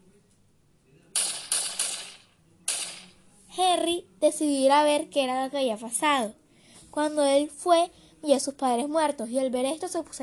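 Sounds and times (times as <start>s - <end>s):
gunshots at a park: 1.2s - 3.2s
speech: 3.6s - 10.2s.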